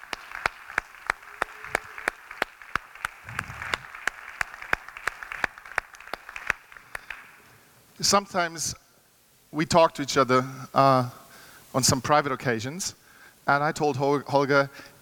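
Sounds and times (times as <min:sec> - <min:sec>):
audience applauding: 0:00.0 - 0:07.4
sharp claps: 0:00.0 - 0:07.5
speech: 0:08.0 - 0:08.8, 0:09.6 - 0:14.9.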